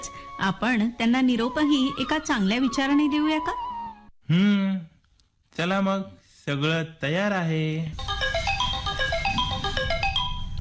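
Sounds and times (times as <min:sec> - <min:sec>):
speech: 0:00.4 - 0:03.6, 0:04.3 - 0:04.9, 0:05.6 - 0:08.0
mobile phone ringtone bright electronic melody: 0:08.0 - 0:10.6.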